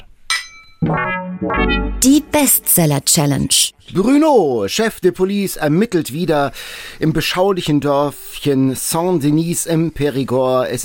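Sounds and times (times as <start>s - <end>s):
wine glasses clinking in a toast: 0.3s - 0.8s
loud music: 0.8s - 2.9s
speech: 0.8s - 10.8s.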